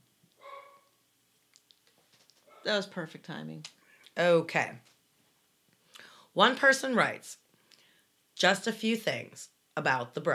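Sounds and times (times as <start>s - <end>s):
dog barking: 0.4s - 0.9s
speech: 2.6s - 4.9s, 6.4s - 7.4s, 8.4s - 10.3s.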